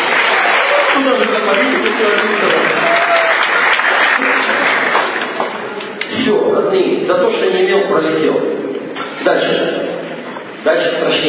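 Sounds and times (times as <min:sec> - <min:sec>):
crowd applauding: 0:00.0 - 0:06.0
faint voices cheering: 0:00.1 - 0:01.2, 0:02.6 - 0:03.6
speech: 0:01.1 - 0:02.8, 0:06.8 - 0:08.6, 0:09.2 - 0:09.9, 0:10.6 - 0:11.2.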